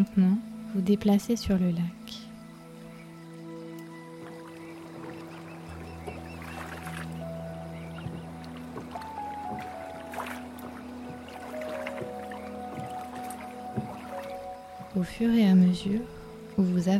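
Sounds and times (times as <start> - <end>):
speech: 0.0 - 2.2, 15.0 - 16.9
sustained gentle droning tones: 0.0 - 16.9
water splashing and lapping against a rowing boat on a lake: 2.9 - 16.9.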